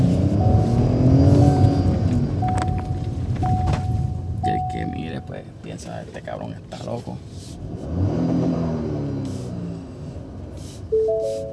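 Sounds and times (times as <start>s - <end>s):
car engine accelerating while driving: 0.0s - 4.5s, 7.6s - 11.5s
brief sharp tone: 0.4s - 5.2s, 10.9s - 11.5s.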